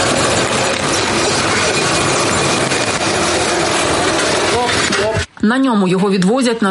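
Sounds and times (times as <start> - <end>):
tracked ground robot whirring and rumbling as it drives onto a car trailer: 0.0 - 5.3
speech: 5.5 - 6.6.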